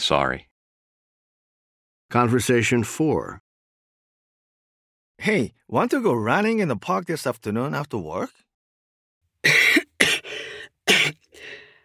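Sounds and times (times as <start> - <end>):
speech: 0.0 - 0.5, 2.1 - 3.4, 5.2 - 8.4
harsh coughs with raspy wheezing tail: 9.5 - 11.6.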